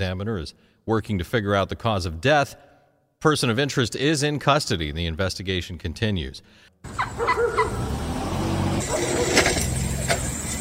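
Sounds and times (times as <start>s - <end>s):
speech: 0.0s - 8.0s, 8.8s - 9.7s
idling traffic held up by wild turkeys on Staten Island: 6.8s - 10.5s
wild turkey gobbles: 6.9s - 7.8s
squawks: 6.9s - 7.9s.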